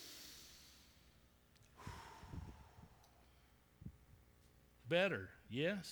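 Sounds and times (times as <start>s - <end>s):
audience breathing in and out together: 0.0s - 1.0s, 1.8s - 3.6s
speech: 4.9s - 5.9s.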